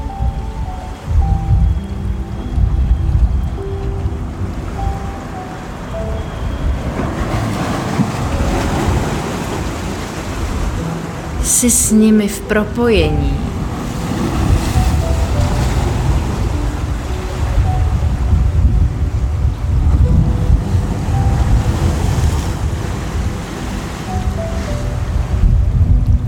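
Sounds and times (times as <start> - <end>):
ocean waves rolling and washing: 0.0 - 26.2
wind rumbling: 0.0 - 26.2
speech: 11.6 - 13.5.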